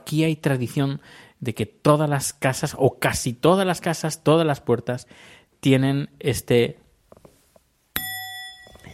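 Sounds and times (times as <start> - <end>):
speech: 0.1 - 6.8
doorbell ding: 8.0 - 8.9.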